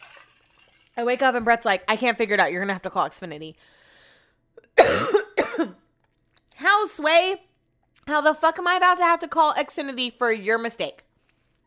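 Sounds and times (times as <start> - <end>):
speech: 1.0 - 3.8, 4.7 - 5.8, 6.7 - 7.5, 8.1 - 11.0
person coughing: 4.6 - 5.8.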